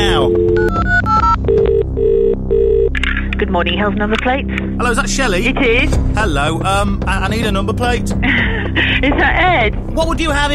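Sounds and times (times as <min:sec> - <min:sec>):
telephone ringing with an electronic ringtone: 0:00.0 - 0:02.9
speech: 0:03.6 - 0:10.5.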